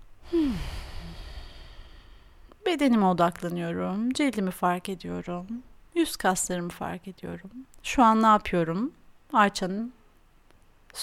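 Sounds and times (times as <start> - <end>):
deep breath let out as an audible sigh with falling voiced tone: 0.2 - 2.5
speech: 2.7 - 10.0.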